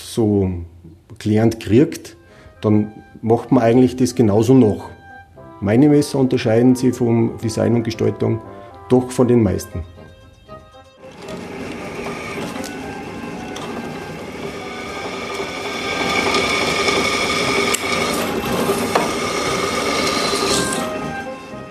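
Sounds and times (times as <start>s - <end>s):
speech: 0.2s - 5.0s, 5.6s - 9.9s
drill boring holes in knife handle material: 11.0s - 21.7s.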